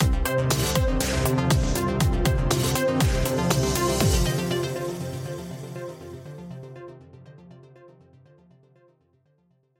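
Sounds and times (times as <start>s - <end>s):
synth groove ident: 0.0s - 6.2s.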